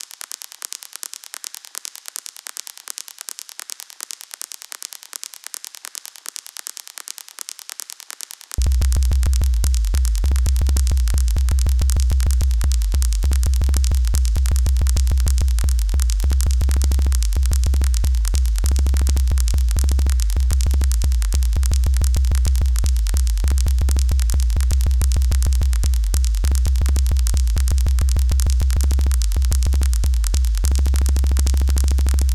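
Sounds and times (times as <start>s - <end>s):
glitch loop: 8.6s - 32.3s.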